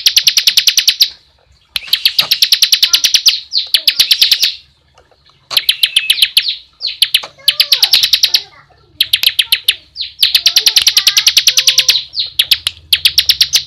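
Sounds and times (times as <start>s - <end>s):
bar-winged prinia rapid rattling trills of bright clicks: 0.0s - 1.2s, 1.8s - 4.6s, 5.5s - 13.6s.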